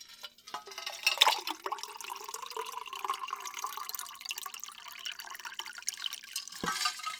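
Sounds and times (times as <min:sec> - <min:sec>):
cold spring water pouring into a glass: 0:01.0 - 0:06.6.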